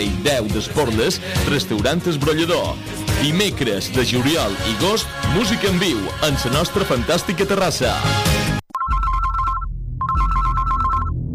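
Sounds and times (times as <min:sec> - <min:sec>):
speech: 0:00.0 - 0:08.5
telephone ringing in electronic bursts: 0:08.7 - 0:11.1.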